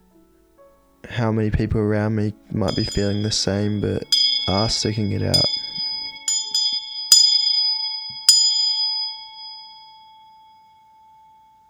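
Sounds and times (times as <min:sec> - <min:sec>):
speech: 0:01.2 - 0:05.5
bell ringing: 0:02.5 - 0:11.6.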